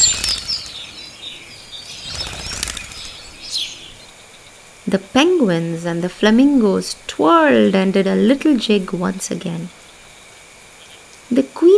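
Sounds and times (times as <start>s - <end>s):
flapping wings: 0.0s - 0.9s, 2.0s - 4.0s
faint thin bird chirps: 0.0s - 4.5s
speech: 4.9s - 9.8s.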